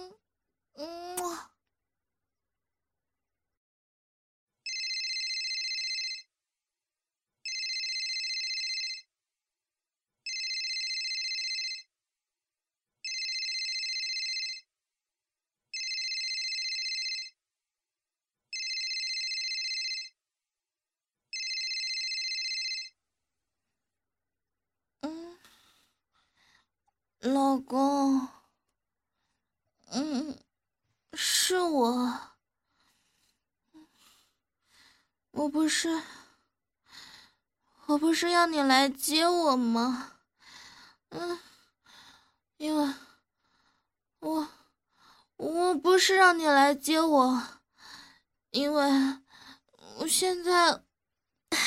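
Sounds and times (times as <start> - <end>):
phone ringtone: 4.7 - 6.3, 7.4 - 9.1, 10.3 - 11.9, 13.0 - 14.7, 15.8 - 17.4, 18.5 - 20.2, 21.3 - 23.0
speech: 27.2 - 28.4, 29.9 - 30.4, 31.2 - 32.3, 35.4 - 36.2, 37.9 - 40.1, 41.1 - 41.5, 42.6 - 43.0, 44.2 - 44.6, 45.4 - 47.6, 48.5 - 49.2, 49.9 - 50.8.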